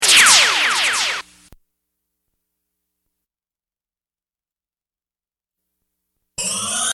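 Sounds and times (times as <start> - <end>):
laser burst: 0.0 - 1.3.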